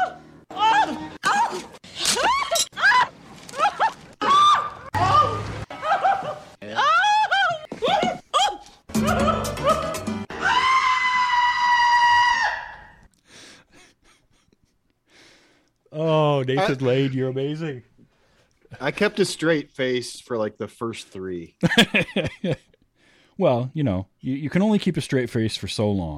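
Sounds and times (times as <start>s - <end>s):
man's high-pitched shrieks and yelps from movie clips: 0.0s - 5.5s, 6.6s - 13.0s
laughter: 4.9s - 8.4s, 21.6s - 22.7s
speech: 16.7s - 17.9s, 18.8s - 22.7s, 23.4s - 26.1s.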